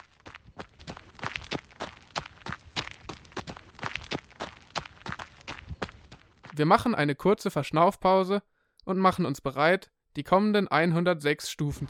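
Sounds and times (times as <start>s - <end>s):
running footsteps of people in a lakeside park: 0.0s - 6.8s
speech: 6.6s - 11.8s.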